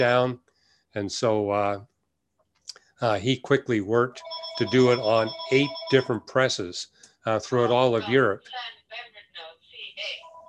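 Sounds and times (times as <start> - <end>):
speech: 0.0 - 1.9, 2.7 - 9.1
telephone ringing in electronic bursts: 4.2 - 6.2.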